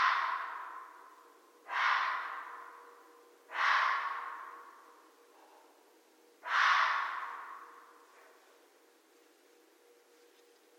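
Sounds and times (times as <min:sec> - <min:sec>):
red fox giving harsh hoarse rasping barks with echo: 0:00.0 - 0:02.9, 0:03.5 - 0:04.8, 0:06.4 - 0:08.0.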